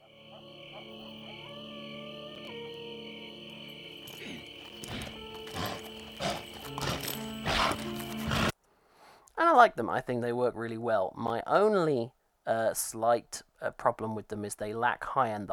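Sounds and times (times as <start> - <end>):
crickets chirring in an outdoor night ambience: 0.0 - 8.5
speech: 9.6 - 15.5.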